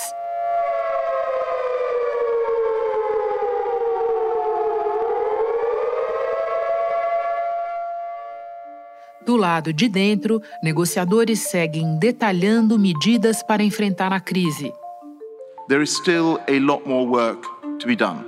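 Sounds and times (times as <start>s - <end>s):
civil-defense siren wailing outside a conference amid protests: 0.0s - 9.3s
speech: 9.3s - 14.8s, 15.7s - 18.2s.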